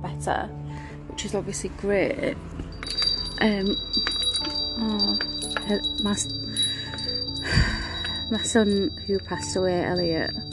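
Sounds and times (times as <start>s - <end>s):
speech: 0.2s - 0.6s, 1.2s - 6.4s, 8.3s - 10.5s
small glass and mother-of-pearl wind chime knocked in a bay window: 2.7s - 10.5s.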